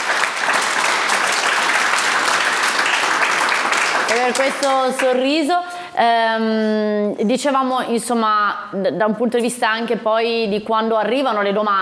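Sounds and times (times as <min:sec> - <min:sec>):
crowd applauding: 0:00.0 - 0:05.2
speech: 0:04.1 - 0:11.8.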